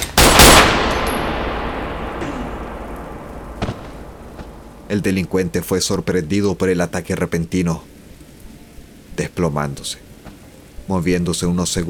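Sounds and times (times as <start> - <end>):
pistol gunshots: 0.0 - 4.7
faint crack: 0.9 - 4.9
speech: 4.9 - 7.9, 9.2 - 10.1, 10.9 - 11.8.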